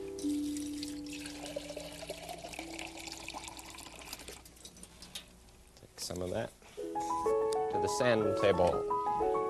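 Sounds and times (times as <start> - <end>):
water pouring into a container: 0.4 - 4.5
speech: 6.1 - 6.6, 7.8 - 9.3.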